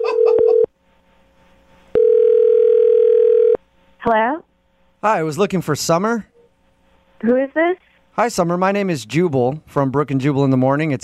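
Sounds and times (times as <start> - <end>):
telephone dial tone: 0.0 - 0.7, 2.0 - 3.6
speech: 4.0 - 6.3, 7.2 - 11.0.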